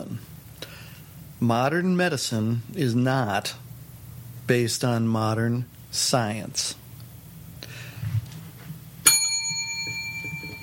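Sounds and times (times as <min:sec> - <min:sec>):
low quiet hum: 0:00.0 - 0:10.6
speech: 0:01.4 - 0:03.6, 0:04.5 - 0:06.8
single bright bell strike ringing: 0:09.0 - 0:10.6.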